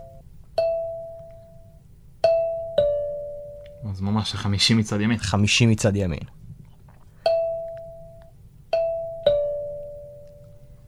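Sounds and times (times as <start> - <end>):
plucked kalimba notes: 0.0 - 3.8, 7.2 - 10.8
speech: 3.9 - 6.4.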